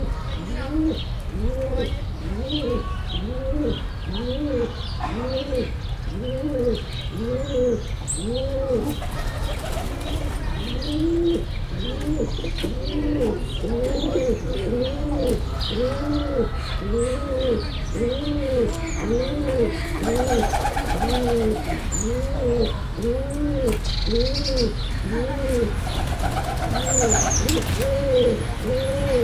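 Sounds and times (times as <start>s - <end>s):
Debrecen roller pigeon cooing at Debrecen zoo: 0.0s - 29.2s
Debrecen roller pigeon wings flapping at Debrecen zoo: 8.9s - 10.4s, 19.9s - 22.0s, 25.7s - 28.2s.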